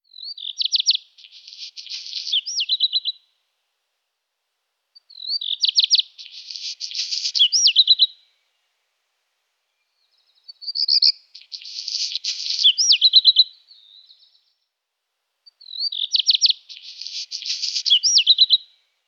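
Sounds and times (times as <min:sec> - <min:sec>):
black redstart Phoenicurus ochruros: 0:00.0 - 0:03.2, 0:05.0 - 0:08.3, 0:09.6 - 0:14.7, 0:15.5 - 0:18.8.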